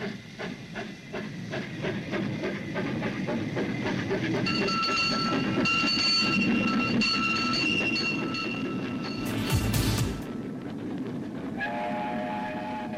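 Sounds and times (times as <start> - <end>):
steam hissing burst: 0.0 - 5.7
small narrow-gauge locomotive rumbling on rails: 0.0 - 12.9
locomotive whistle: 11.6 - 12.9.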